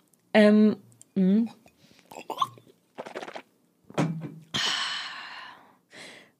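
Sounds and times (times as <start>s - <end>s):
speech: 0.4s - 1.6s
mouth noises: 1.4s - 3.5s
deliberate breathing with gasping inhales and airy exhale: 4.6s - 6.3s.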